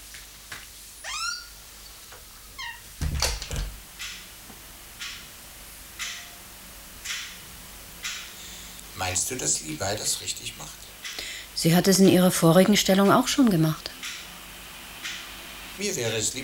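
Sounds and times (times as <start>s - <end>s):
high chirping squeaks: 1.0s - 2.9s
house door slamming shut with a loud thud and rattle: 2.6s - 3.8s
speech: 9.1s - 10.9s, 11.6s - 13.9s, 15.8s - 16.4s.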